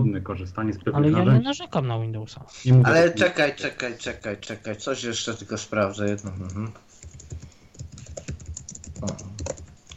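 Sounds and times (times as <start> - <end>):
speech: 0.0 - 7.0, 9.0 - 9.5
typing on a computer keyboard: 6.0 - 9.9.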